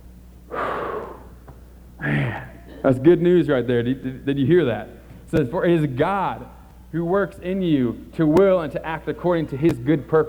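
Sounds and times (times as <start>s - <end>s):
faint low hum: 0.0s - 10.2s
person taking a deep breath during a church sermon: 0.5s - 2.6s
speech: 2.8s - 10.2s.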